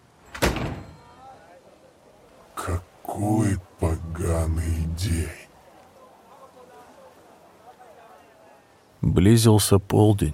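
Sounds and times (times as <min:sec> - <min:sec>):
shop door slamming shut with full force: 0:00.2 - 0:01.1
speech: 0:03.2 - 0:05.4, 0:09.2 - 0:10.3.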